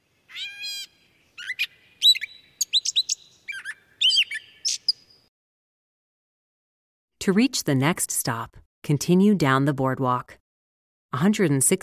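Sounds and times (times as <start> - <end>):
songbird singing from uprooted tree roots: 0.0 - 5.3
speech: 7.2 - 10.4, 11.1 - 11.8.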